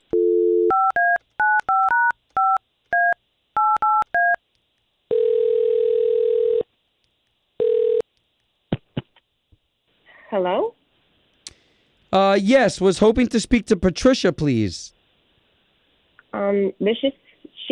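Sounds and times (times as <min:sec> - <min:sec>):
telephone ringing tone on the line: 0:00.1 - 0:04.4, 0:05.1 - 0:06.7, 0:07.6 - 0:08.0
speech: 0:10.4 - 0:10.8, 0:12.1 - 0:15.0, 0:16.5 - 0:17.2.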